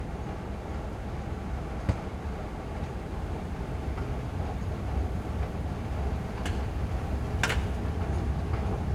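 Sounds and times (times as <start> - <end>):
escalator running in a subway station: 0.2 - 8.7.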